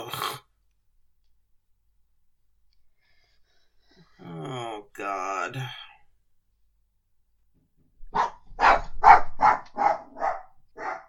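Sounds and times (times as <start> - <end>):
speech: 5.5 - 5.8
dog barking: 8.1 - 11.0.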